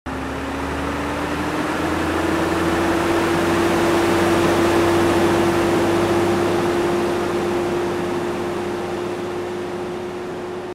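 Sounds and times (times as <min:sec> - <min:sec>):
Renault Midlum 270 truck: 0:00.1 - 0:10.7.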